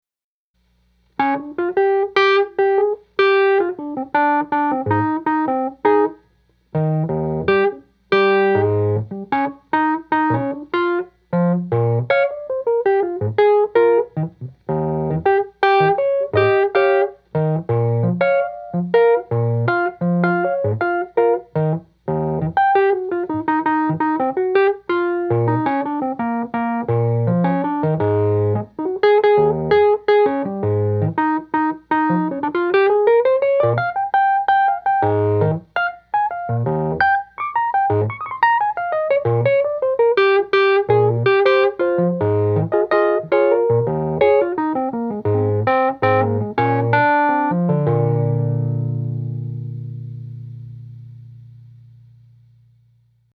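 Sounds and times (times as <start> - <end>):
Wurlitzer electric piano: 1.2 - 52.6.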